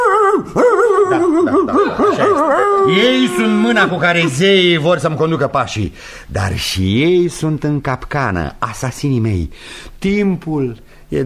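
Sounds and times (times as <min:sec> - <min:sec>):
dog whining and yelping on command: 0:00.0 - 0:02.9
laughter: 0:00.6 - 0:05.4
speech: 0:02.9 - 0:11.2.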